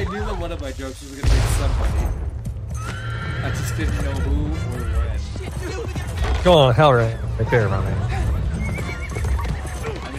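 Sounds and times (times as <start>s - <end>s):
speech: 0.1s - 2.3s, 3.4s - 8.2s
horse hooves clip-clopping: 2.0s - 10.1s
horse whinnying: 2.7s - 5.2s, 7.0s - 10.1s
faint voices murmuring: 3.6s - 10.1s.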